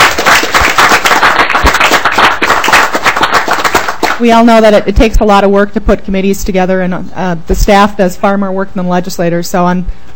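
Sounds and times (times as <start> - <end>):
applause at a legislative committee meeting: 0.0 - 4.4
speech: 4.2 - 10.1.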